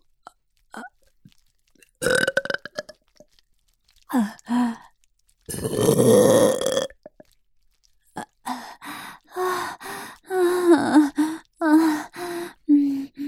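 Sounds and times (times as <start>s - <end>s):
loud throaty voiced burps: 2.0s - 3.0s, 5.5s - 7.3s
gasp: 8.5s - 13.2s.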